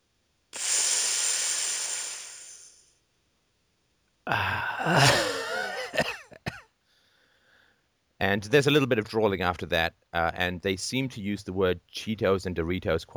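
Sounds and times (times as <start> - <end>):
voice imitating exaggerated breathing style of people in Vancouver Canada: 0.6 - 2.8, 4.3 - 6.0
speech: 4.3 - 5.2, 8.2 - 13.1
raspy wheezy groan with squeaky rising and falling pitches: 4.3 - 6.0.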